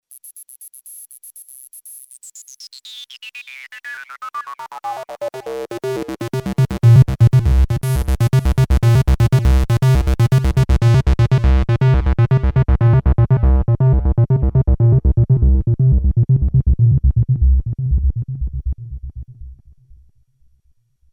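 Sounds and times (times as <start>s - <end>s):
bass sequence: 4.9s - 20.3s.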